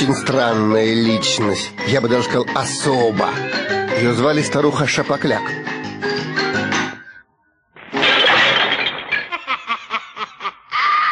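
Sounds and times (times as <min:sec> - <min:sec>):
speech: 0:00.0 - 0:05.8
glass window shattered by slingshot shot: 0:07.8 - 0:09.8
glass shards falling and tinkling: 0:08.0 - 0:09.4
person cackling laugh: 0:09.3 - 0:11.0.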